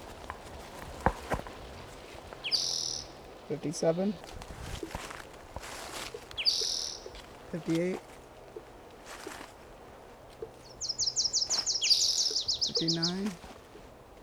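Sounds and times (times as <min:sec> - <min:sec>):
bird calls from a field recording: 0:00.0 - 0:14.2
steady hiss: 0:00.0 - 0:14.2
speech: 0:03.5 - 0:04.4, 0:07.5 - 0:08.1.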